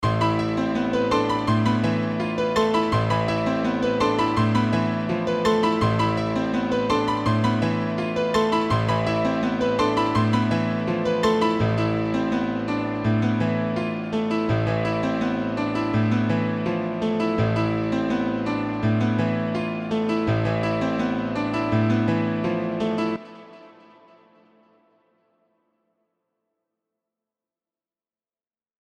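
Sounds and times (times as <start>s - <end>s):
piano loop: 0.0s - 23.9s.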